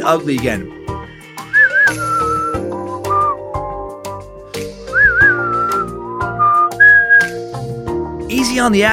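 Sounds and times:
speech: 0:00.0 - 0:00.8, 0:08.4 - 0:08.9
sustained instrumental backing music: 0:00.0 - 0:08.9
person whistling a bright wavering melody with trills: 0:01.5 - 0:04.2, 0:04.9 - 0:07.4.

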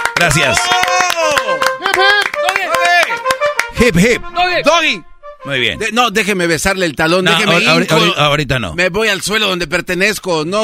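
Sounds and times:
brisk hand clapping from a small group: 0:00.0 - 0:03.9
speech: 0:00.2 - 0:02.2, 0:03.8 - 0:10.6.

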